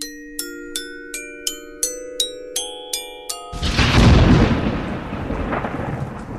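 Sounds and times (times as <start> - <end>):
quick run of bright mallet-struck notes: 0.0 - 4.8
loud deep roll of thunder: 3.6 - 6.3.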